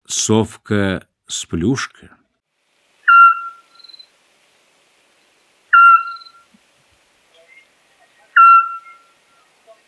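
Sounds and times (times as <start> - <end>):
Eurasian scops owl giving short whistled notes with a steady mellow tone: 3.0 - 4.0, 5.7 - 6.5, 8.3 - 9.4.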